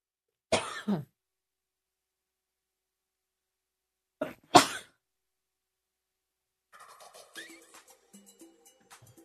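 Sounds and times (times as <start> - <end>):
harsh coughing: 0.5 - 1.1, 4.2 - 5.0
throat clearing: 0.6 - 1.1, 4.2 - 5.0.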